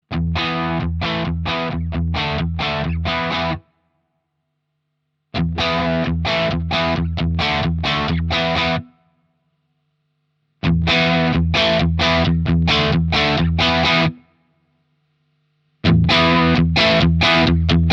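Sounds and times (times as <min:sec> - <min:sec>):
overdriven guitar: 0:00.1 - 0:03.8, 0:05.3 - 0:09.1, 0:10.6 - 0:14.4, 0:15.8 - 0:17.9.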